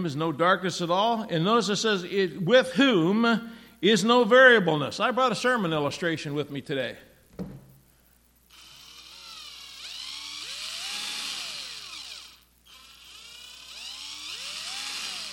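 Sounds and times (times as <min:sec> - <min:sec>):
speech: 0:00.0 - 0:07.5
variable speed power drill whirring: 0:08.5 - 0:15.3.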